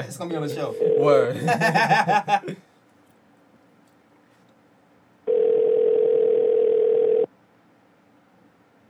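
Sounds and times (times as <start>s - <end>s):
speech: 0.0s - 2.7s
phone ringback tone on an outgoing call: 0.7s - 1.2s, 5.3s - 7.3s
laughter: 1.3s - 2.6s.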